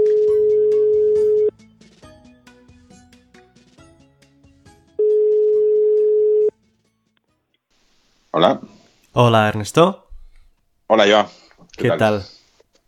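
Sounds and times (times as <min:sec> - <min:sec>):
telephone ringback tone of a call being placed: 0:00.0 - 0:01.5, 0:05.0 - 0:06.5
speech: 0:09.2 - 0:10.0, 0:10.9 - 0:12.4.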